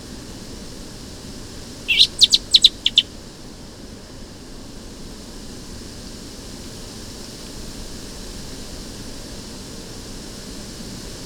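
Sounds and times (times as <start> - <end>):
common blackbird Turdus merula chinking calls: 1.9 - 3.0
faint steady hiss: 1.9 - 3.0.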